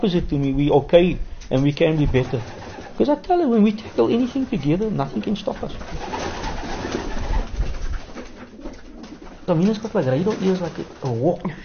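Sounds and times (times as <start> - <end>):
speech: 0.0 - 6.2, 9.5 - 11.6
pigeons cooing in a pigeon loft: 2.1 - 3.2, 3.8 - 11.6.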